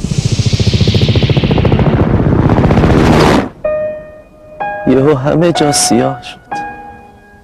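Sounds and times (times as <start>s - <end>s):
helicopter rotor chopping overhead: 0.0s - 3.6s
speech: 5.0s - 6.4s.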